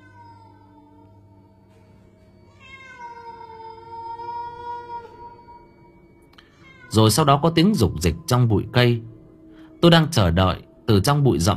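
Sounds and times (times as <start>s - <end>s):
cat meowing: 0.0s - 1.3s, 2.5s - 5.6s, 6.4s - 7.2s
low steady hum: 0.0s - 11.5s
speech: 6.9s - 9.2s, 9.8s - 11.5s.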